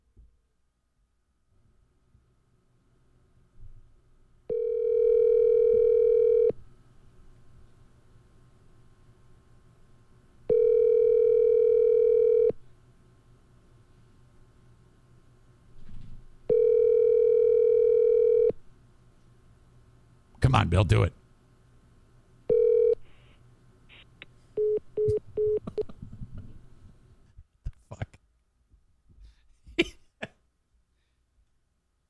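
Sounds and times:
ringing tone of an outgoing phone call: 4.5 - 6.6, 10.5 - 12.6, 16.5 - 18.6, 22.5 - 23.0, 24.6 - 25.6
speech: 20.6 - 21.2.

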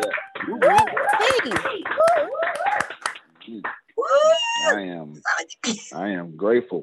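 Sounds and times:
overlapping voices: 0.0 - 3.8
several people clapping through separate microphones: 0.0 - 4.8
people cheering: 0.0 - 4.9
speech: 6.0 - 6.8.

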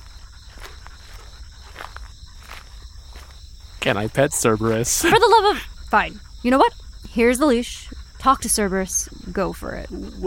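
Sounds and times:
footsteps of a person walking: 0.0 - 5.3
speech: 3.8 - 10.2
laughter: 4.0 - 5.7.

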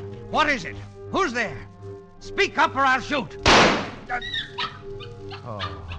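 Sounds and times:
speech: 0.3 - 4.7, 5.5 - 5.9
dog whimpering with yips and whining cries: 4.2 - 5.9
dog barking: 4.4 - 5.9.

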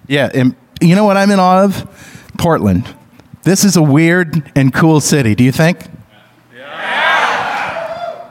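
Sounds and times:
speech: 0.1 - 6.0
large live audience in Portland cheering and whooping: 6.6 - 8.2.

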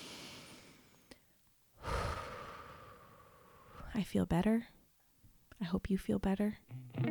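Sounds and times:
airy exhale pushed out through the mouth: 0.0 - 1.1, 1.8 - 3.9
deep breath drawn in quietly through the nose: 0.0 - 3.9
speech: 3.9 - 4.8, 5.6 - 6.9.

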